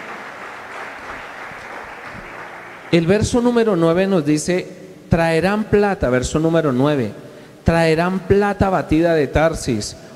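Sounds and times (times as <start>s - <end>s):
audience applauding: 0.0s - 3.4s
speech: 2.9s - 10.0s.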